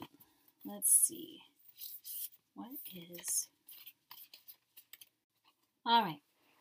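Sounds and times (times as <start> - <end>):
speech: 0.6 - 3.9, 5.8 - 6.3
deck of oracle cards being shuffled: 1.7 - 5.6.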